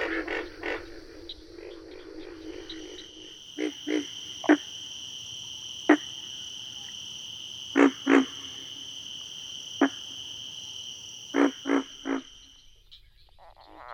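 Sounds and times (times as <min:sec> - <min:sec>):
steady high insect drone: 0:00.0 - 0:12.8
pig frog grunting: 0:03.5 - 0:10.4, 0:11.3 - 0:12.4.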